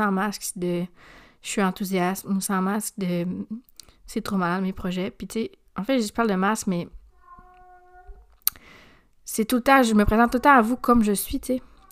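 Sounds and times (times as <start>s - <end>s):
speech: 0.0s - 7.0s, 9.3s - 11.7s
cat meowing: 7.1s - 8.3s.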